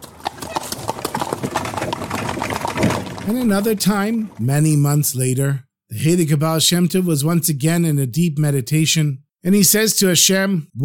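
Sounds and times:
horse hooves clip-clopping: 0.0s - 4.7s
wagon rumbling and rattling: 0.0s - 5.0s
speech: 3.3s - 10.8s.

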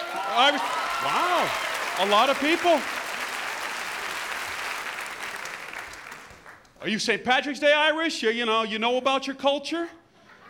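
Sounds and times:
crowd clapping in dense applause: 0.0s - 6.8s
speech: 0.4s - 3.0s, 6.8s - 10.0s.

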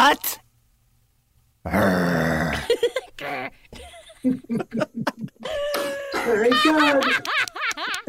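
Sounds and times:
speech: 1.6s - 2.1s, 4.2s - 8.0s
voice imitating a big dog growling: 1.7s - 3.5s
laughter: 2.6s - 8.0s.

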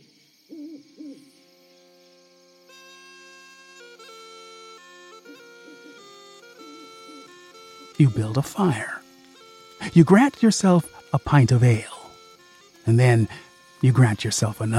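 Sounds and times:
distant owl hoots in a forest at night: 0.0s - 1.4s, 4.1s - 13.5s
dense chorus of high-pitched insect chirring in a dark forest at night: 0.0s - 14.7s
speech: 8.0s - 9.0s, 9.8s - 11.9s, 12.8s - 14.7s.

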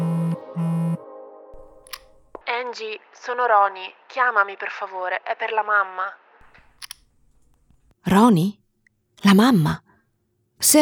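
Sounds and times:
phone vibrating in buzzing pulses: 0.0s - 1.0s
speech: 2.7s - 6.2s, 8.0s - 8.6s, 9.2s - 9.9s, 10.6s - 10.8s.

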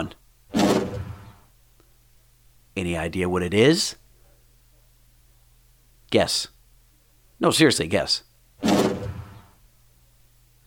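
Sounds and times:
desk drawer sliding shut with reverb: 0.6s - 1.3s, 8.6s - 9.5s
speech: 2.8s - 4.0s, 6.1s - 6.6s, 7.4s - 8.3s.

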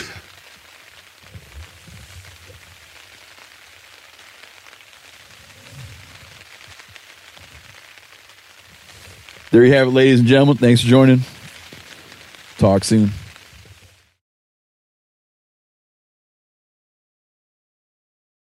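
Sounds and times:
steady rain pattering on taut tent fabric: 0.0s - 14.2s
speech: 9.5s - 11.3s, 12.7s - 13.2s.

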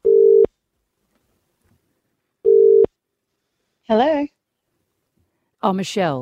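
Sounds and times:
telephone line tone beeps as a call goes through: 0.0s - 0.5s, 2.4s - 2.9s
speech: 3.9s - 4.3s, 5.6s - 6.2s.

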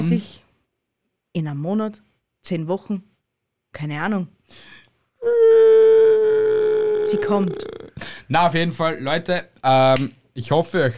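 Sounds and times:
speech: 0.0s - 0.3s, 1.4s - 3.1s, 3.7s - 5.7s, 7.1s - 10.9s
person wailing in exaggerated mock crying: 5.2s - 8.0s.

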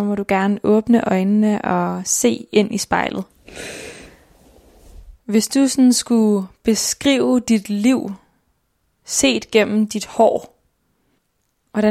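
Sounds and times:
speech: 0.0s - 3.8s, 5.3s - 8.2s, 9.1s - 10.5s
deep breath drawn in through the nose and mouth: 3.4s - 5.2s.

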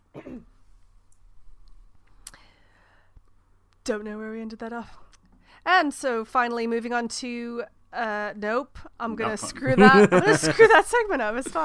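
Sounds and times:
short rough throat clearing: 0.2s - 0.4s
faint click: 1.1s - 2.5s
speech: 3.9s - 11.6s
laughter: 9.1s - 11.6s.

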